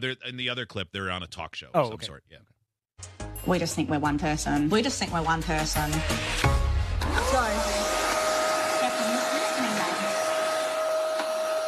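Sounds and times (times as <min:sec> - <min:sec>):
speech: 0:00.0 - 0:07.8
person imitating a vacuum cleaner starting up: 0:07.1 - 0:11.6.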